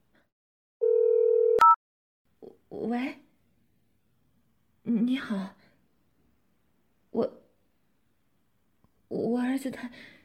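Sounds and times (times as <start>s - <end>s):
telephone dial tone as a child dials the phone: 0.8s - 1.8s
speech: 2.8s - 3.2s, 5.0s - 5.6s, 7.2s - 7.4s, 9.1s - 10.2s.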